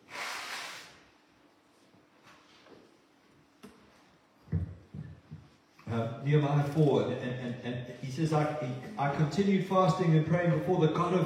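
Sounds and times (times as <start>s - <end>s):
person blowing nose: 0.0s - 1.1s
speech: 5.9s - 11.2s
laughter: 6.8s - 9.8s.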